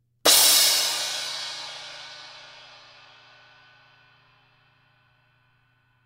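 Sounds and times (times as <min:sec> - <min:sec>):
trash crash cymbal: 0:00.3 - 0:03.5.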